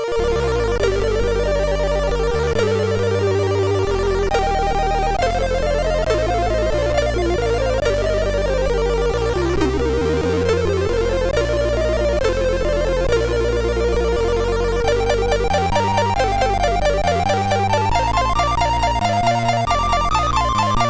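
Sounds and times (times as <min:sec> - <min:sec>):
MOS6581R2 SID chip synth sound: 0:00.1 - 0:20.8.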